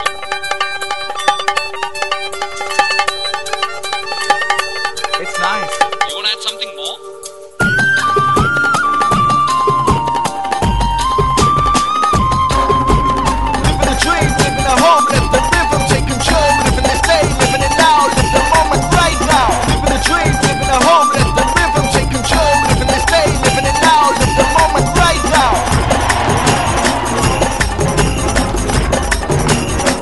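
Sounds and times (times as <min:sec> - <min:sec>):
Arabic music ringtone: 0:00.0 - 0:30.0.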